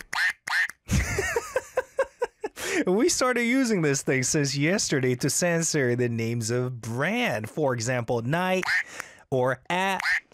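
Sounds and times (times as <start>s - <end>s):
rubber squeeze toy quacking when pressed: 0.0s - 0.8s, 8.6s - 9.0s, 10.0s - 10.3s
laughter: 0.9s - 3.0s
speech: 2.8s - 10.1s.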